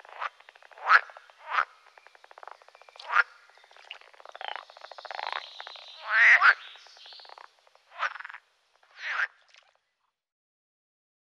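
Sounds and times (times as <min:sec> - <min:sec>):
pool frog croaking: 0:00.0 - 0:09.8.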